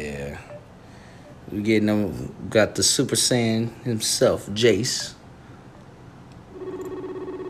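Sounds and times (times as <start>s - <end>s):
faint hum: 0.0s - 7.4s
speech: 1.5s - 5.2s
electronic video call ringing tone: 6.5s - 7.4s.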